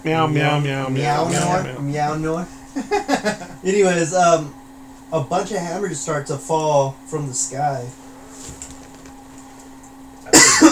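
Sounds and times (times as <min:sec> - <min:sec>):
speech: 0:00.0 - 0:08.0
laughter: 0:02.8 - 0:03.7
person coughing from something caught in the back of the throat: 0:10.3 - 0:10.7.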